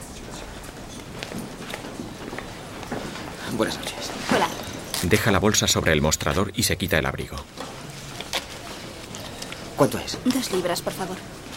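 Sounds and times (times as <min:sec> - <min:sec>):
footsteps going down marble stairs inside a theatre: 0:00.6 - 0:03.6
speech: 0:03.5 - 0:07.6, 0:09.8 - 0:11.4.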